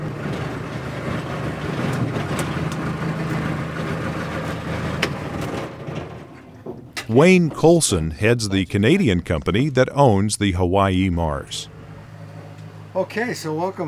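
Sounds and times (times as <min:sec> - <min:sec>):
small skiff motor droning on a boat ride to a flying boat at a seaplane base: 0:00.0 - 0:07.2, 0:11.2 - 0:13.8
speech: 0:07.1 - 0:11.7, 0:13.0 - 0:13.8.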